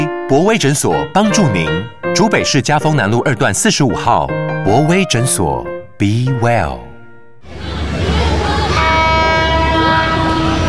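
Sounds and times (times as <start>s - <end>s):
speech: 0.3s - 7.7s
passing train horn blast: 8.5s - 10.6s.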